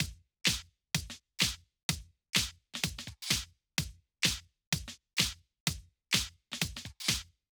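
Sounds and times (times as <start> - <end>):
kick drum fill: 0.0 - 7.3.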